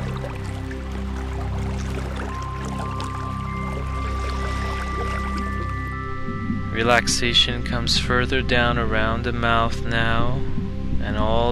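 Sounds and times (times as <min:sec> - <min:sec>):
waterfall rushing water: 0:00.0 - 0:05.8
sustained low droning tones: 0:00.0 - 0:11.5
speech: 0:06.8 - 0:10.5, 0:11.1 - 0:11.5.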